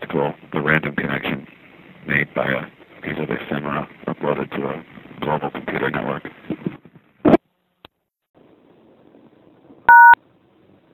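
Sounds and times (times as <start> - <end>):
speech: 0.1 - 6.4
touch-tone beep from an outdoor payphone keypad: 9.9 - 10.2.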